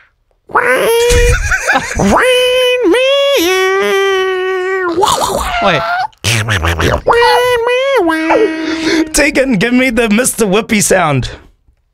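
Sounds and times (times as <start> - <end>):
speech: 0.6 - 2.4, 5.6 - 11.4
person imitating a cartoon duck's voice singing: 2.1 - 9.2.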